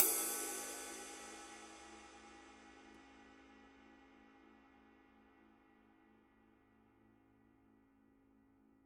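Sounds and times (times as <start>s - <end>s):
20 inch medium flat ride cymbal: 0.0s - 6.0s.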